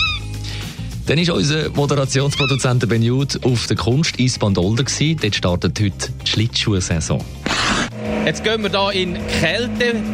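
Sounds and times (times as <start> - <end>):
tawny owl call: 0.0 - 0.4, 2.3 - 2.8
speech: 1.1 - 7.4, 8.2 - 10.1.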